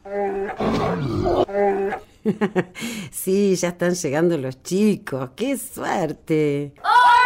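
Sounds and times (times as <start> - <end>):
bear growling: 0.0 - 2.0
speech: 0.1 - 1.4, 2.0 - 7.1.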